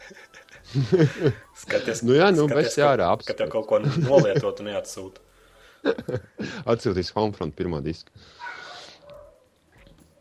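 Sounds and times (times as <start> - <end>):
laughter: 0.0 - 2.9, 3.6 - 4.8, 5.8 - 6.6
speech: 0.1 - 5.2, 5.8 - 8.6
dog barking: 8.4 - 9.5.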